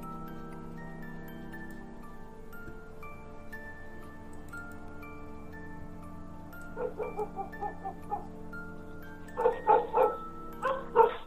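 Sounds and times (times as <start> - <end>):
steady tonal hum: 0.0 - 11.2
village dogs barking: 6.7 - 8.4, 9.3 - 11.2.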